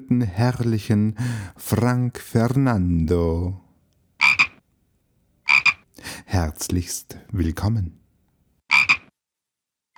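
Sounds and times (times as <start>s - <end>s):
speech: 0.1s - 3.6s, 6.0s - 8.0s
frog croaks: 4.2s - 4.6s, 5.4s - 5.9s, 8.7s - 9.1s.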